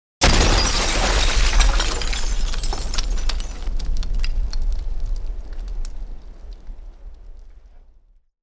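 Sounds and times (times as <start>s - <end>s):
glass explosion: 0.2s - 4.6s.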